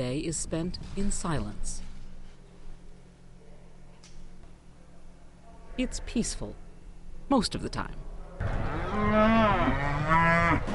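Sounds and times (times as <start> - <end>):
speech: 0.0 - 1.9, 5.8 - 6.6, 7.3 - 10.7
cattle mooing on an abbey working farm: 8.6 - 10.7.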